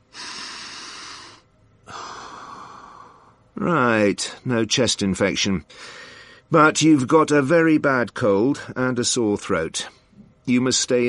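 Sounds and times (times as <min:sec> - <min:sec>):
person with a bad cold breathing deeply during a chest examination: 0:00.0 - 0:03.5, 0:05.7 - 0:06.5
speech: 0:03.6 - 0:11.0.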